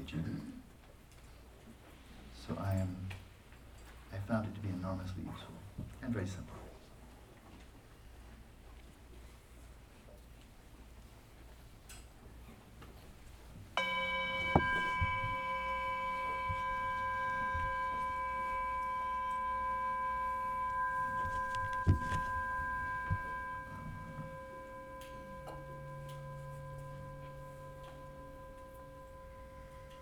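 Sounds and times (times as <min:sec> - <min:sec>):
faint room noise: 0:00.0 - 0:30.0
speech: 0:04.3 - 0:06.6
soft knocks: 0:13.8 - 0:17.9
meditation chime ringing: 0:13.8 - 0:30.0.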